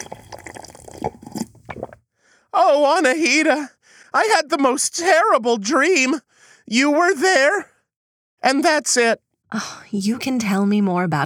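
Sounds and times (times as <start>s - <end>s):
person slurping an energy drink: 0.0s - 2.0s
liquid gulps and squishy swallows: 0.0s - 2.4s
speech: 2.7s - 7.7s, 8.4s - 11.2s.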